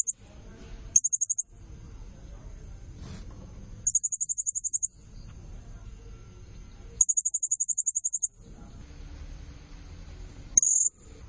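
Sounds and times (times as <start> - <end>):
Blue-crowned hanging parrot sharp very high ticking calls: 1.0 - 1.4, 3.9 - 4.9, 7.0 - 8.3
low muffled rumble: 1.5 - 3.9, 4.9 - 7.0, 8.3 - 11.2.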